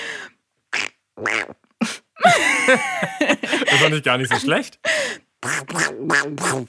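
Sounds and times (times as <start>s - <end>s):
laughter: 2.2s - 4.7s
speech: 2.7s - 3.1s, 3.9s - 6.6s
person imitating a frog croak: 5.4s - 6.6s.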